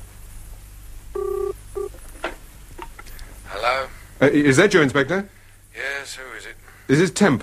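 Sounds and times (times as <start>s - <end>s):
low hum: 0.0s - 7.4s
telephone ringing tone down the line: 1.2s - 2.0s
speech: 3.7s - 7.4s.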